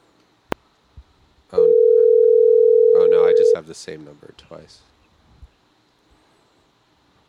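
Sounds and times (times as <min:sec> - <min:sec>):
loud steady telephone dial tone: 0:01.6 - 0:03.6
speech: 0:03.7 - 0:05.0.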